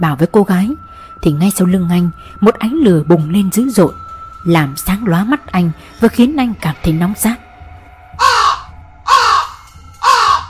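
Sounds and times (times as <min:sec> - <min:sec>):
speech: 0:00.0 - 0:07.4
harsh crow-like bird cries: 0:08.2 - 0:10.4.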